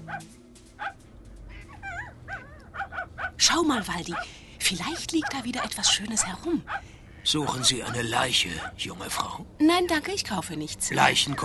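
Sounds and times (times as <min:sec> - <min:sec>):
low rumble: 0:00.0 - 0:11.4
speech: 0:00.2 - 0:00.9, 0:03.4 - 0:11.4
small dog yipping and whining: 0:01.6 - 0:03.1.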